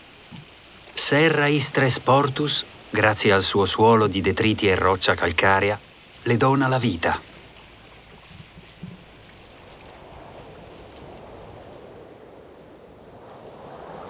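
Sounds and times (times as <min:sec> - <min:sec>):
wash of surf on an island seashore: 0:00.0 - 0:14.0
speech: 0:01.1 - 0:07.3
steady sirocco wind blowing along the seashore of an island: 0:09.1 - 0:14.0.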